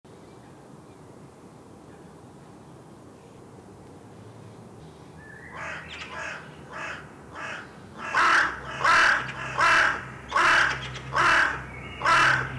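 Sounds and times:
carrion crow Corvus corone cawing: 0:05.6 - 0:12.5
faint low hum: 0:11.0 - 0:12.5.

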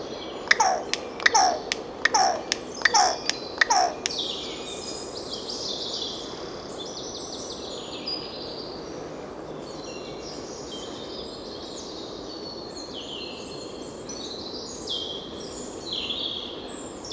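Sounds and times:
thin high songbird warbling: 0:00.4 - 0:04.2
Carrion crow Corvus corone giving harsh descending caws: 0:00.5 - 0:04.2.

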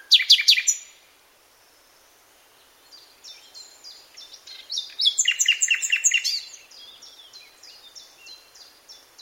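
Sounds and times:
common nightingale Luscinia megarhynchos song: 0:00.0 - 0:09.2.

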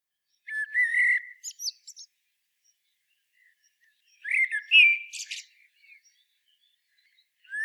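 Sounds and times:
common blackbird Turdus merula song: 0:00.0 - 0:07.6.

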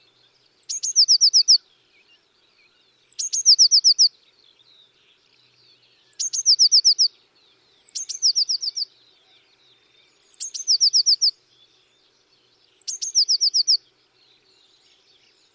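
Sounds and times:
Eurasian blue tit singing, Cyanistes caeruleus: 0:00.0 - 0:15.5.

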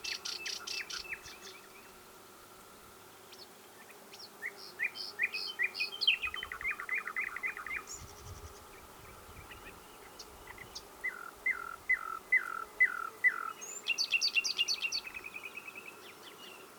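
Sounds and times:
common nightingale song, Luscinia megarhynchos: 0:00.0 - 0:01.9, 0:03.3 - 0:16.6.

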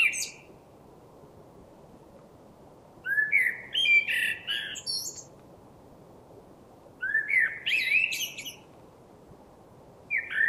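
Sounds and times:
common blackbird Turdus merula song: 0:00.0 - 0:00.5, 0:03.0 - 0:05.4, 0:07.0 - 0:08.7, 0:10.1 - 0:10.4.

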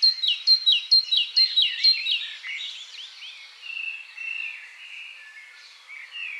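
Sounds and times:
great tit Parus major calling: 0:00.0 - 0:02.6.

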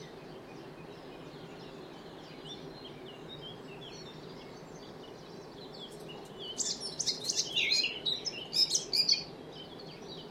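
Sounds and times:
faint background hiss: 0:00.0 - 0:10.2
Eurasian blackcap Sylvia atricapilla singing a scratchy warble: 0:06.4 - 0:09.9.

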